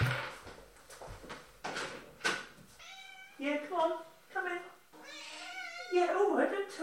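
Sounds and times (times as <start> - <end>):
thumping: 0.0 - 0.4
cat meowing insistently: 2.8 - 3.4, 5.0 - 6.1
speech: 3.4 - 4.7, 5.9 - 6.8.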